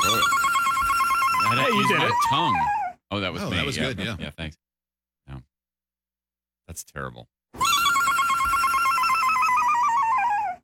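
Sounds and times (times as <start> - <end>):
shrill electronic ringtone warbling: 0.0 - 2.9, 7.6 - 10.6
speech: 1.7 - 4.6, 6.7 - 7.7.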